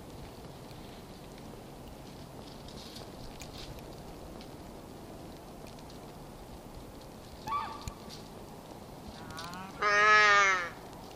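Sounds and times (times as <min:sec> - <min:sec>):
muskox calf call: 0:09.2 - 0:10.8.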